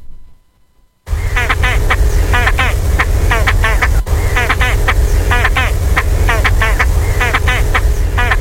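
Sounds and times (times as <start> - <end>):
Great Crested Grebe calling with harsh rapid rattling notes: 1.1 - 8.4
loud low rumble: 1.1 - 8.4.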